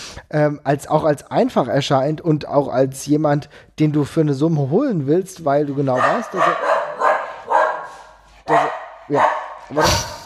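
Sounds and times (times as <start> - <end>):
speech: 0.3 - 6.7, 8.5 - 10.1
dog barking: 5.8 - 10.2.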